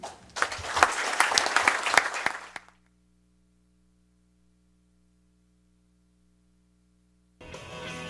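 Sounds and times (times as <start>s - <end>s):
large crowd applauding in a standing ovation: 0.0s - 2.8s
faint electrical hum: 0.0s - 7.4s.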